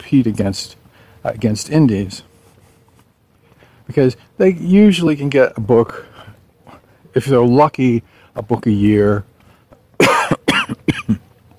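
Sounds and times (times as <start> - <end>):
speech: 0.1 - 2.3, 3.9 - 6.1, 7.1 - 9.3
person coughing harshly after inhaling a bug: 10.0 - 11.3.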